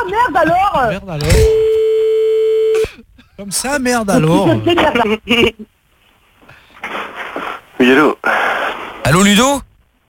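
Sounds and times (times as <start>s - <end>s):
speech: 0.0s - 1.8s, 3.4s - 5.8s, 7.8s - 8.5s, 9.1s - 9.7s
telephone ringing tone calling a listener back: 1.6s - 2.8s.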